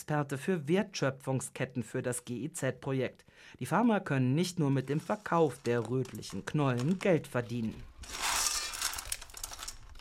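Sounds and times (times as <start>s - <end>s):
speech: 0.0s - 8.3s
clear plastic bags crinkling and rustling: 4.7s - 9.9s
snacks scraping and clinking from a metal bowl into plastic bags: 4.8s - 9.9s.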